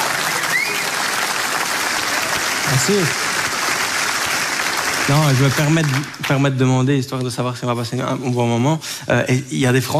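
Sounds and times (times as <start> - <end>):
audience applause at a stand-up comedy show in Belgium: 0.0 - 6.8
speech: 2.7 - 3.3, 5.1 - 9.9.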